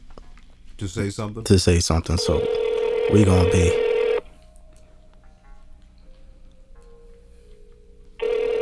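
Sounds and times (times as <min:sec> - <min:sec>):
faint hum: 0:00.0 - 0:08.5
speech: 0:00.8 - 0:03.9
electronic phone ring-back tone on an outgoing call: 0:02.2 - 0:04.2, 0:08.2 - 0:08.5.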